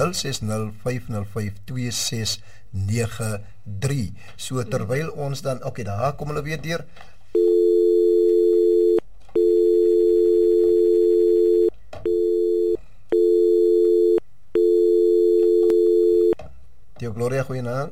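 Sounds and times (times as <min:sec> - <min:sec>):
speech: 0:00.0 - 0:07.4, 0:17.0 - 0:17.9
telephone busy tone after a call drops: 0:07.4 - 0:16.4.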